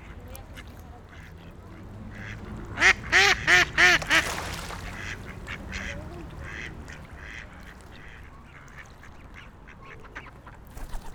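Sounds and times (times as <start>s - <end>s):
ducks quacking on a lake in a park: 2.1s - 10.3s.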